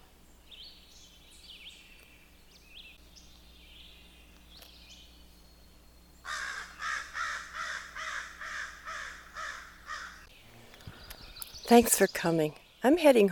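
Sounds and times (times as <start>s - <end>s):
faint birdsong: 0.0s - 13.3s
family group of crows or jays cawing on a trail: 6.2s - 10.3s
speech: 11.7s - 13.3s.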